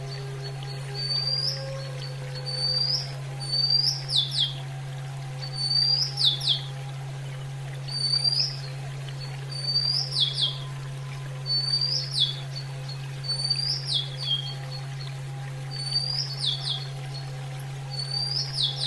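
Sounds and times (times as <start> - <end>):
female Oriental magpie-robin song with whistled phrases and falling slurs: 0.0 - 4.6, 5.4 - 6.7, 7.9 - 8.7, 9.5 - 10.7, 11.4 - 14.8, 15.7 - 17.0, 17.9 - 18.8
steady low hum: 0.0 - 18.8.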